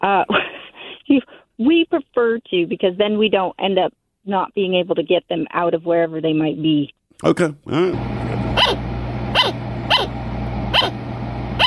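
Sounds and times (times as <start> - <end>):
speech: 0.0 - 0.4, 1.1 - 8.8
sugar glider barking: 8.4 - 11.0.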